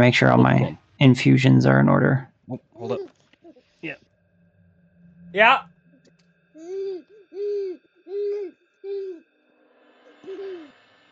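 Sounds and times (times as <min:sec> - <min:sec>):
speech: 0:00.0 - 0:03.1, 0:05.3 - 0:05.7
person mimicking owl hoots: 0:06.6 - 0:09.2, 0:10.2 - 0:10.7.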